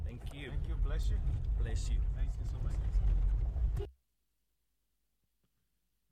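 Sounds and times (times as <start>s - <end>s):
car rolling along a rough badly repaired road: 0.0s - 3.9s
speech: 0.3s - 3.9s.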